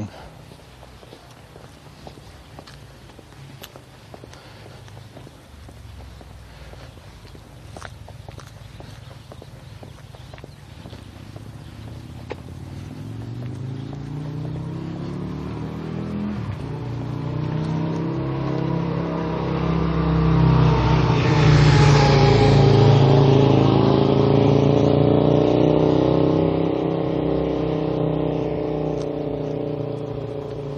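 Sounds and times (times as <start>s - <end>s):
motorcycle engine revving: 10.9s - 30.7s.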